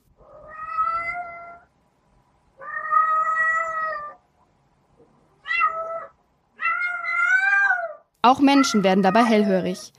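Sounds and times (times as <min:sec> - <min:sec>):
female cat in heat yowling: 0:00.2 - 0:01.7, 0:02.6 - 0:04.2, 0:05.4 - 0:09.8
speech: 0:08.3 - 0:09.9.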